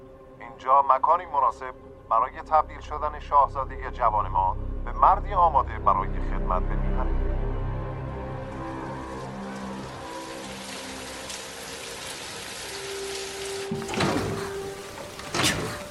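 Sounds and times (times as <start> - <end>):
speech: 0.5 - 7.5
steady rain pattering: 8.4 - 15.3.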